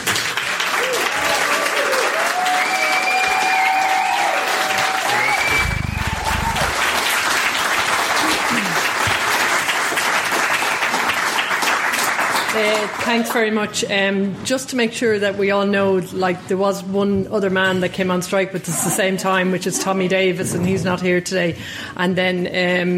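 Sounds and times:
audience applause at a solidarity event: 0:00.0 - 0:13.3
whistles: 0:02.6 - 0:03.8, 0:05.1 - 0:06.1
speech: 0:13.0 - 0:22.9.

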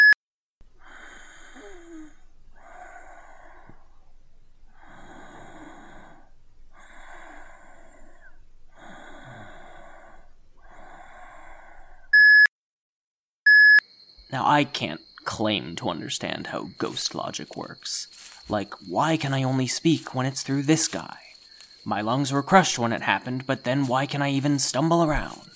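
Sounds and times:
raspy breathy gasps and wheezes: 0:00.7 - 0:12.2, 0:16.5 - 0:25.5
electronic voicemail beep tone: 0:12.2 - 0:12.5, 0:13.5 - 0:13.8
speech: 0:14.3 - 0:21.2, 0:21.8 - 0:25.5.

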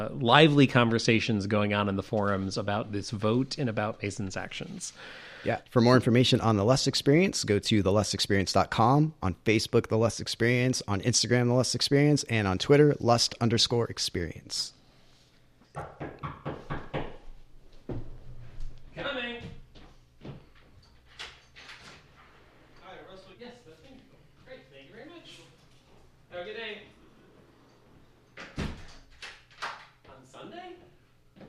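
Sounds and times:
speech: 0:00.0 - 0:14.8, 0:15.8 - 0:16.4
sharp knocks on a door: 0:15.8 - 0:17.3.

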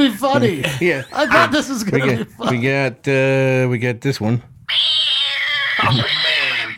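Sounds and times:
speech: 0:00.0 - 0:04.9, 0:05.8 - 0:06.2
cat's loud drawn-out whiny meow: 0:04.7 - 0:06.7.

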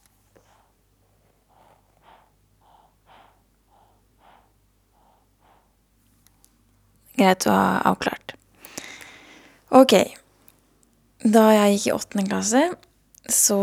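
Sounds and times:
low hum: 0:00.0 - 0:13.6
baby breathing in soft quick breaths: 0:00.3 - 0:06.0, 0:08.6 - 0:09.7
speech: 0:07.2 - 0:08.4, 0:09.7 - 0:10.2, 0:11.2 - 0:13.6.

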